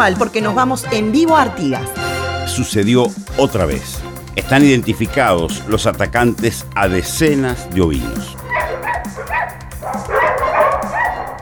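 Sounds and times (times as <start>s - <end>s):
speech: 0.0s - 8.4s
dog barking: 8.4s - 11.4s.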